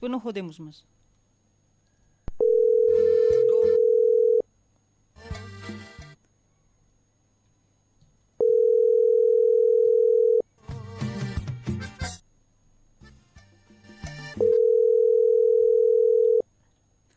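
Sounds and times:
speech: 0:00.0 - 0:01.0
ringback tone of an unanswered outgoing telephone call: 0:02.4 - 0:04.4, 0:08.4 - 0:10.4, 0:14.4 - 0:16.4.

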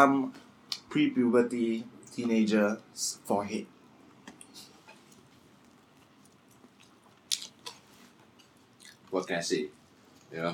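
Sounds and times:
speech: 0:00.0 - 0:03.8, 0:09.1 - 0:10.5
person chewing a mouthful of spicy food: 0:04.4 - 0:10.3
crunchy bites of spicy food: 0:05.7 - 0:07.8.

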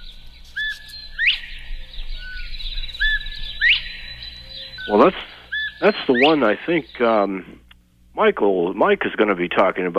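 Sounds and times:
Northern bobwhite two-part whistled call: 0:00.0 - 0:07.1
speech: 0:04.9 - 0:07.6, 0:08.2 - 0:09.9.

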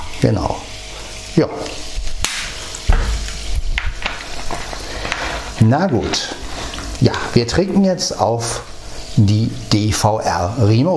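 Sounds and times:
carbonated water fizzing in a freshly opened bottle: 0:00.0 - 0:10.9
speech: 0:00.2 - 0:00.7, 0:01.4 - 0:01.9, 0:05.6 - 0:06.4, 0:07.0 - 0:10.9.

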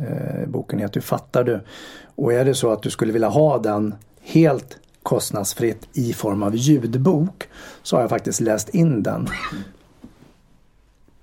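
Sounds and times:
speech: 0:00.0 - 0:09.8
single sharp cough: 0:09.2 - 0:09.8.

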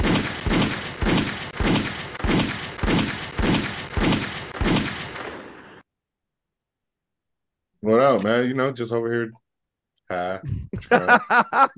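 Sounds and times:
gunshot sound effects: 0:00.0 - 0:05.8
speech: 0:07.9 - 0:09.4, 0:10.1 - 0:11.7
laughter: 0:10.4 - 0:11.7.

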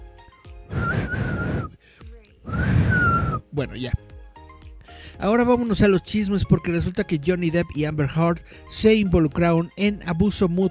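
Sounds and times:
person whistling breathily: 0:00.7 - 0:01.8, 0:02.5 - 0:03.5
speech: 0:03.6 - 0:04.1, 0:05.2 - 0:10.7.

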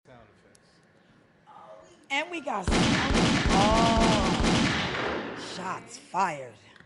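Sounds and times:
speech: 0:02.1 - 0:03.9, 0:05.6 - 0:06.7
dense burst of rapid gunshots sound effect: 0:02.7 - 0:05.5.

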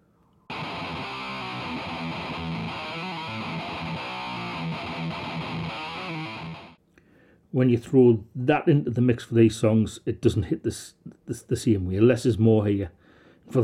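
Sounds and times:
guitar through HM2-style distortion pedal: 0:00.5 - 0:06.8
speech: 0:07.6 - 0:13.6.

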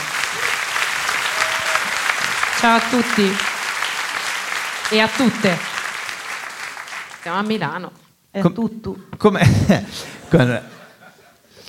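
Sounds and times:
laughter: 0:00.0 - 0:05.9, 0:09.4 - 0:11.5
live audience applause: 0:00.0 - 0:07.4
speech: 0:02.6 - 0:03.5, 0:04.9 - 0:05.7, 0:07.2 - 0:10.7.

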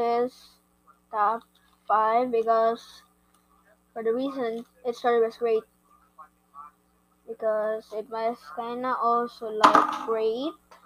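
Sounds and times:
speech: 0:00.0 - 0:03.1, 0:04.0 - 0:05.7, 0:07.3 - 0:10.7
phone falling and clattering: 0:09.6 - 0:10.2.

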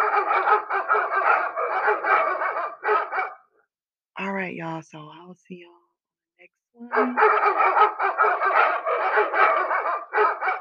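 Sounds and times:
doorbell motion-detector alert playing recorded dog barking: 0:00.0 - 0:03.6, 0:06.9 - 0:10.6
speech: 0:04.5 - 0:05.8, 0:06.4 - 0:10.0.

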